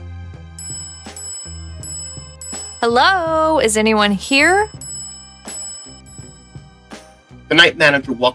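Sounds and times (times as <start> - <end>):
hotel front desk bell being struck: 0.6 - 6.8
speech: 2.8 - 4.8, 7.5 - 8.3.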